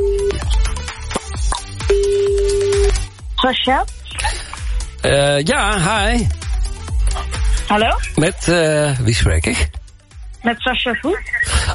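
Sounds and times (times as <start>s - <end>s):
music with punchy beats: 0.0s - 11.7s
phone ringing tone of an outgoing call: 1.8s - 3.0s
speech: 3.4s - 4.0s, 5.0s - 6.4s, 7.7s - 9.8s, 10.4s - 11.7s.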